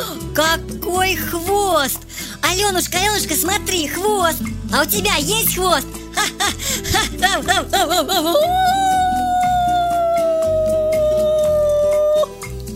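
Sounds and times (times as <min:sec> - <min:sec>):
speech: 0:00.0 - 0:08.9
soft music: 0:00.0 - 0:12.7
laughter: 0:06.2 - 0:09.3
dog whimpering: 0:08.3 - 0:12.4.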